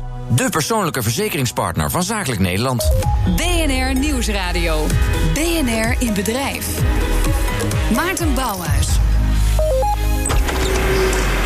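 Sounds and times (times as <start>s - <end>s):
speech: 0.3s - 9.1s
small electric cart towing flower trolleys whining: 10.3s - 11.4s.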